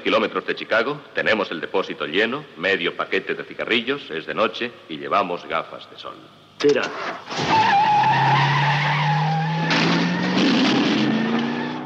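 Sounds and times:
speech: 0.0 - 8.5
car engine roaring as it speeds off: 6.8 - 11.8
car tires screeching: 6.9 - 11.8.

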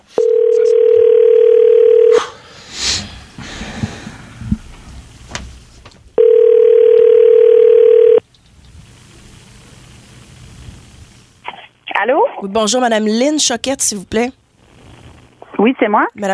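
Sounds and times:
telephone ringing tone of an outgoing call: 0.2 - 2.1, 6.2 - 8.2
faint breathing: 2.1 - 5.1
speech: 12.4 - 14.4, 15.6 - 16.3.

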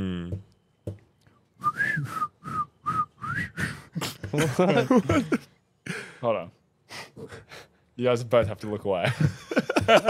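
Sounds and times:
person whistling a movie theme tune: 1.6 - 3.8
people laughing: 4.0 - 5.5, 9.0 - 10.0
speech: 4.4 - 5.6, 6.2 - 6.6, 7.2 - 10.0.

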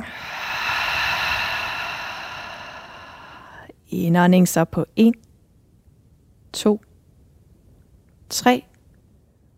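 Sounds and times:
slow steady exhale of breath: 0.0 - 3.7
speech: 3.9 - 5.3, 6.5 - 6.9, 8.3 - 8.7.

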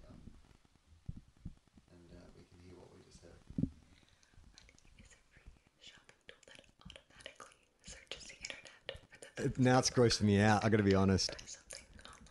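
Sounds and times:
moist mouth clicks: 3.5 - 9.5, 11.3 - 12.2
wet lip smacking: 4.2 - 5.2, 6.0 - 9.4
soft ASMR whispering: 4.9 - 9.6, 11.2 - 12.2
speech: 9.4 - 11.4.

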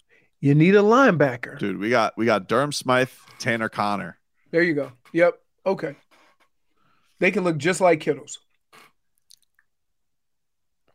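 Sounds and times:
speech: 0.4 - 6.0, 7.2 - 8.4
person sipping an energy drink: 8.7 - 9.8.

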